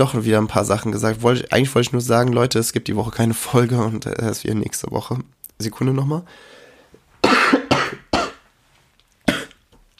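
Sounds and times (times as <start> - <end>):
speech: 0.0 - 6.6
person coughing harshly: 7.2 - 8.4, 9.3 - 9.6.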